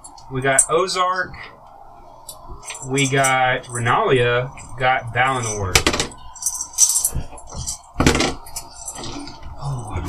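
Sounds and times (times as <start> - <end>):
speech: 0.3 - 1.5, 2.8 - 6.0
metal dice clattering: 5.9 - 7.8.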